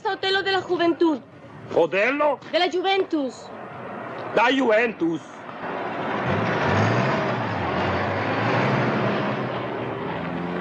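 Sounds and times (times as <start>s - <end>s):
road noise: 0.0s - 10.5s
speech: 0.1s - 3.6s, 4.3s - 5.4s
bus engine rumbling as it revs and pulls away: 3.4s - 10.5s.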